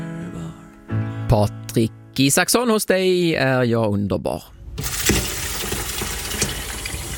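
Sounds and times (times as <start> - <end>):
speech: 1.3 - 4.9
water running from a tap: 4.8 - 7.1.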